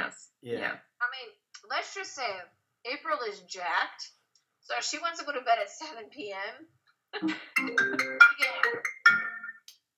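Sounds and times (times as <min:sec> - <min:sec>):
speech: 0:00.4 - 0:08.9
phone ringtone playing bright melodic notes: 0:07.3 - 0:09.7.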